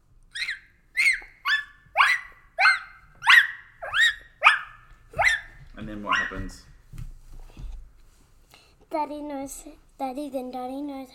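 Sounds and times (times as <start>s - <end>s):
female puppy barking high-pitched: 0.3s - 6.5s
speech: 5.8s - 6.7s, 8.9s - 11.1s.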